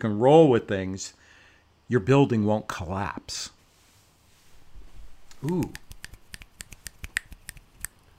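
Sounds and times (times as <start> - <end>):
speech: 0.0 - 1.2, 1.9 - 3.6, 5.4 - 5.8
finger snaps: 5.3 - 8.0.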